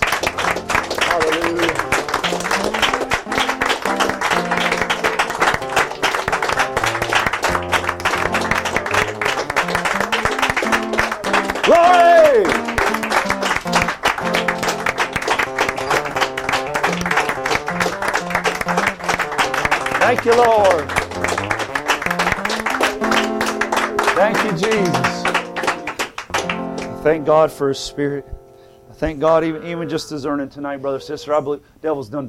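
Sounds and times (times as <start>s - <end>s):
crowd clapping hands in praise: 0.0s - 27.0s
music or voices: 0.8s - 5.5s, 8.6s - 13.0s, 19.8s - 26.0s, 28.9s - 31.6s
speech: 27.3s - 28.4s, 29.0s - 32.2s.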